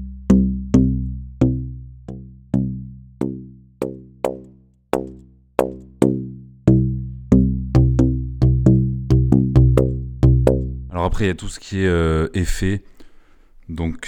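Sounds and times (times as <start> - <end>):
resonant telescoping tube struck with shifting harmonics: 0.3 - 10.9
speech: 11.2 - 12.9, 13.7 - 14.0.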